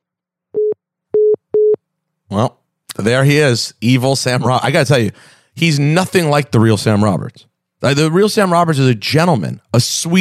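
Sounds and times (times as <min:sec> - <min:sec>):
telephone busy signal: 0:00.6 - 0:01.8
speech: 0:02.3 - 0:10.2.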